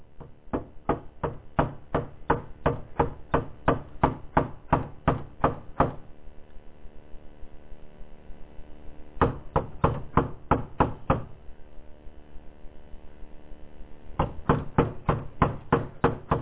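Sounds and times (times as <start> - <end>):
firm rapid knocking on a wooden door: 0.2 - 6.0, 9.2 - 11.3, 14.2 - 16.3.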